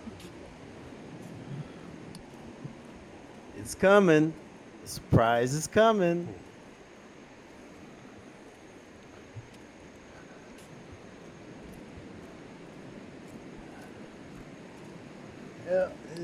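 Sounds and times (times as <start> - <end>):
light rain falling outdoors: 0.0 - 16.2
speech: 3.6 - 6.4.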